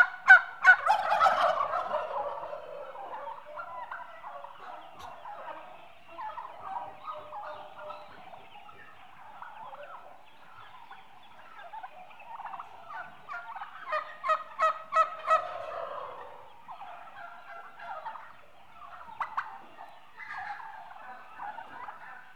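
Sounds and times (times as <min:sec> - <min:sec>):
flock of eight-month-old domestic turkey hens chattering: 0:00.0 - 0:22.3.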